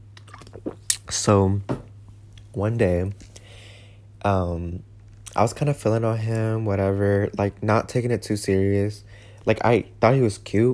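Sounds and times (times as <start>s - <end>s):
person sipping and swallowing apple juice: 0.1s - 1.2s
speech: 1.2s - 1.7s, 2.6s - 3.3s, 4.2s - 10.7s.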